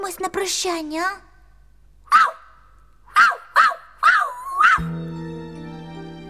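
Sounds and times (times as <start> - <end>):
speech: 0.2 - 1.3
small dog barking playfully: 2.1 - 2.5, 3.1 - 4.9.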